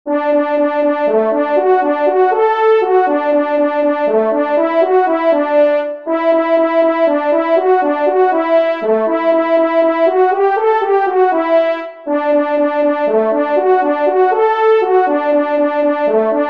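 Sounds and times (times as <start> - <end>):
hunting horn solo: 0.1 - 16.4.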